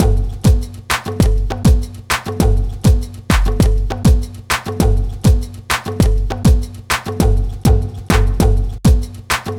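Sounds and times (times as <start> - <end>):
hip hop congas loop: 0.0 - 9.5.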